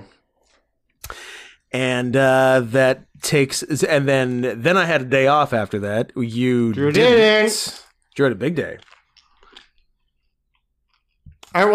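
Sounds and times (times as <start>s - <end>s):
speech: 1.7s - 9.0s, 11.5s - 11.7s
chewing chewy candy with smacking mouth sounds: 7.7s - 11.6s.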